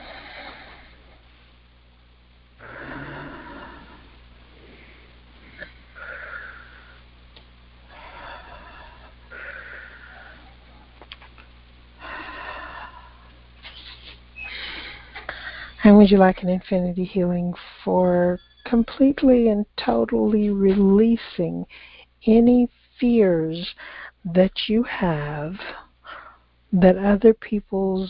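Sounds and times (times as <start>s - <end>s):
low steady hum: 0.0s - 28.0s
deep human breaths: 2.6s - 7.2s, 7.8s - 10.9s, 12.0s - 15.8s, 21.7s - 22.2s, 23.7s - 24.2s, 25.7s - 26.5s
speech: 15.9s - 25.8s, 26.7s - 28.0s.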